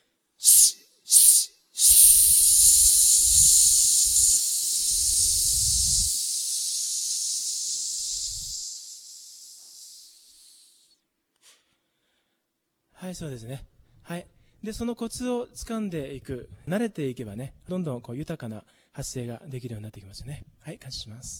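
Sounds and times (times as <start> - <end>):
sharp hissing exhalations through the teeth during a breathing exercise: 0.4 - 10.9
speech: 13.1 - 21.3.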